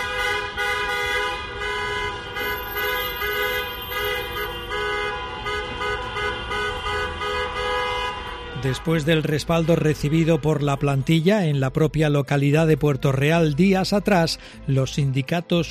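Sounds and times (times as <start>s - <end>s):
car horns honking from a caravan of vehicles on city streets: 0.0s - 11.0s
engine and traffic rumble on city streets: 0.0s - 11.6s
speech: 8.6s - 15.6s.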